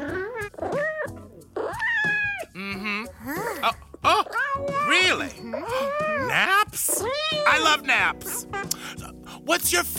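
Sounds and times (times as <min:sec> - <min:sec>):
cat meowing: 0:00.0 - 0:02.6, 0:04.0 - 0:08.7
speech: 0:09.5 - 0:09.9.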